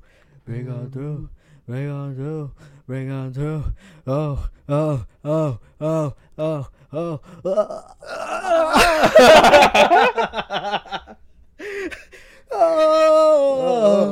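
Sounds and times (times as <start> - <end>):
speech: 0.4 - 12.0
man making drawn-out groaning vocal sounds: 4.2 - 9.2, 12.5 - 14.1
man yawning with a long loud exhale: 4.3 - 9.1, 12.5 - 14.1
laughter: 8.4 - 11.2.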